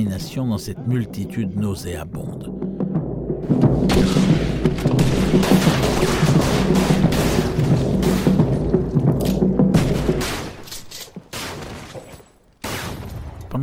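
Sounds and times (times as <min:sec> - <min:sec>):
speech: 0:00.0 - 0:02.7, 0:03.5 - 0:05.0
thuds: 0:02.9 - 0:13.4
dense low rumble: 0:03.4 - 0:11.2
gunshots fired by police in a chaotic melee: 0:03.4 - 0:13.6.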